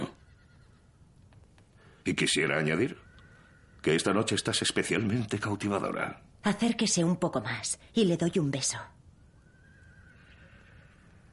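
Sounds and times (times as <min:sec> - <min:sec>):
horse neighing with a long wavering whinny: 0:00.0 - 0:01.1, 0:02.4 - 0:04.4, 0:09.4 - 0:11.3
dense low rumble of noise: 0:00.0 - 0:11.3
speech: 0:02.0 - 0:03.0, 0:03.8 - 0:09.0.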